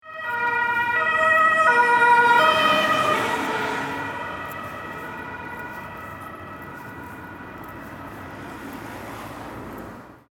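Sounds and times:
police siren: 0:00.0 - 0:09.4.

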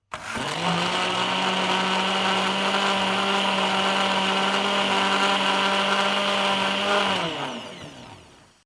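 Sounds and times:
kitchen mixer running on setting one: 0:00.1 - 0:08.6.

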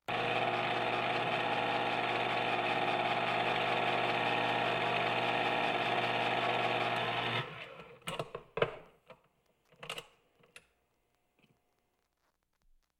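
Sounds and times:
electric can opener in a kitchen: 0:00.0 - 0:08.8.

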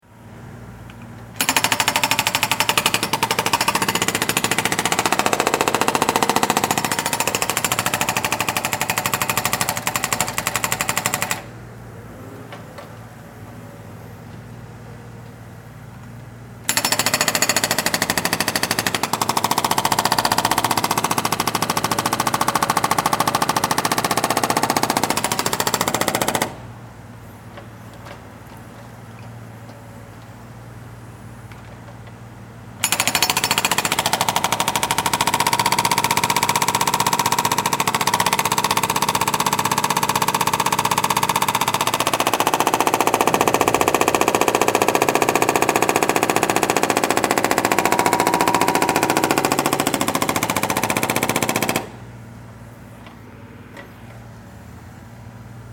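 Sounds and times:
jackhammer: 0:01.4 - 0:11.5, 0:16.7 - 0:26.6, 0:32.8 - 0:52.0.

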